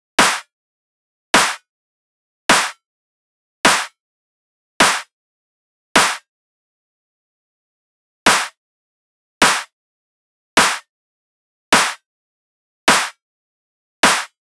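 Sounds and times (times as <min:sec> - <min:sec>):
midtempo drum loop with clap: 0:00.2 - 0:00.4, 0:01.4 - 0:01.6, 0:02.5 - 0:02.7, 0:03.7 - 0:04.0, 0:04.8 - 0:05.1, 0:06.0 - 0:06.2, 0:08.3 - 0:08.6, 0:09.4 - 0:09.7, 0:10.6 - 0:10.8, 0:11.8 - 0:12.0, 0:12.9 - 0:13.2, 0:14.0 - 0:14.4.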